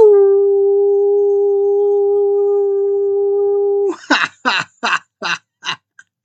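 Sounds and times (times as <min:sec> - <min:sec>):
person imitating a dog's howl: 0:00.0 - 0:04.0.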